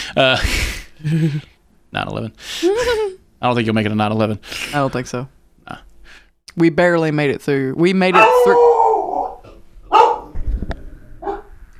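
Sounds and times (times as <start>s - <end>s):
speech: 0.1s - 5.9s, 6.6s - 8.7s
dog barking: 8.1s - 10.4s, 11.2s - 11.5s.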